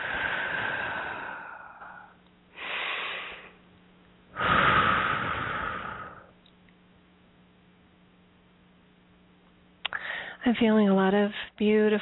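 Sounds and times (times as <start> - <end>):
deep breathing during a guided relaxation: 0.0 - 3.6, 4.3 - 6.4, 9.9 - 10.4
speech: 10.5 - 12.0.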